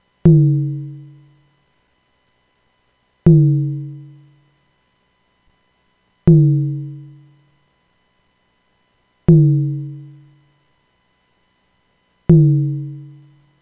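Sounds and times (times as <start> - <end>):
nonlinear drum: 0.3 - 1.2, 3.3 - 4.1, 6.3 - 7.2, 9.3 - 10.2, 12.3 - 13.2.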